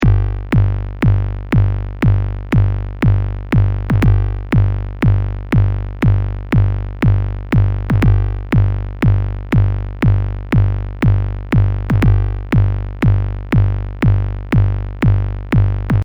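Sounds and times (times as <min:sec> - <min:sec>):
four-on-the-floor techno-style sound: 0:00.0 - 0:16.0.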